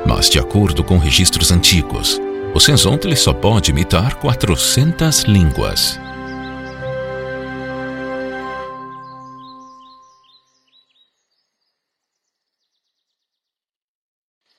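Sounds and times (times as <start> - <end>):
speech: 0.1 - 6.1
high bird chirps: 5.6 - 7.1, 8.7 - 13.5.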